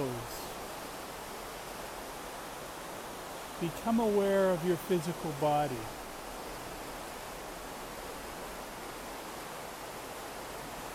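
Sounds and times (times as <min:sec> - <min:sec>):
flowing river water: 0:00.0 - 0:10.9
speech: 0:03.6 - 0:06.0.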